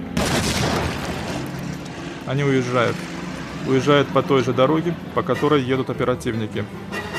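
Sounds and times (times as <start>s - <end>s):
grenade explosion in a basement: 0.1s - 1.8s
speech: 2.3s - 7.1s.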